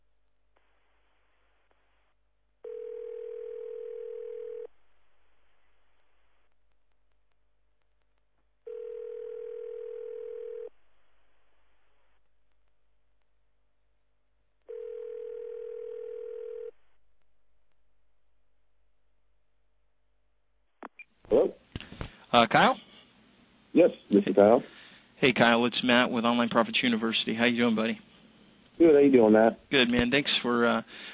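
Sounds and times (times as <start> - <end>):
steady telephone dial tone: 2.7 - 4.7, 8.7 - 10.7, 14.7 - 16.7
speech: 22.3 - 22.9, 23.7 - 28.1, 28.8 - 31.1.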